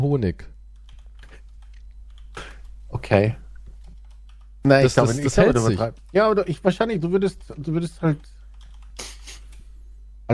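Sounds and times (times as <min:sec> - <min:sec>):
speech: 0:00.0 - 0:00.6, 0:03.0 - 0:03.4, 0:04.6 - 0:08.4
typing on a computer keyboard while searching online: 0:00.7 - 0:02.4, 0:03.6 - 0:04.5, 0:07.2 - 0:09.6.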